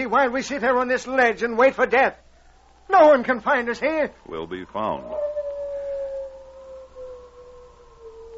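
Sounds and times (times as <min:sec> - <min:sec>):
speech: 0:00.0 - 0:02.2, 0:02.9 - 0:05.2
faint hiss: 0:00.0 - 0:08.3
wolf howling: 0:02.4 - 0:03.7, 0:04.6 - 0:08.3.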